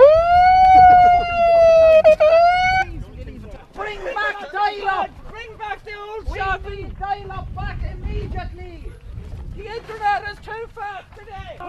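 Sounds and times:
siren blaring on a beach: 0.0s - 2.9s.

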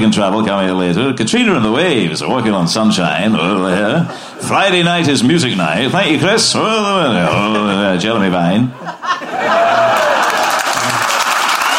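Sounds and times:
speech: 0.0s - 10.0s
laughter: 3.2s - 11.4s
polite audience applause: 9.4s - 11.7s.

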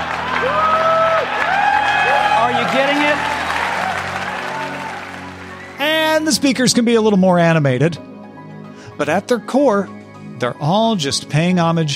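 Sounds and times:
large audience applauding at tech product reveal: 0.0s - 6.3s
crowd cheering at tech reveal: 0.0s - 6.4s
speech: 6.2s - 8.1s, 9.0s - 11.9s.

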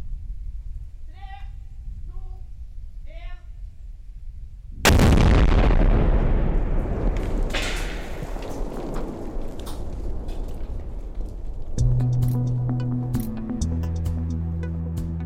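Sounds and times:
controlled detonation of old military grenades in open terrain: 4.8s - 12.0s
steady music: 11.8s - 15.2s.

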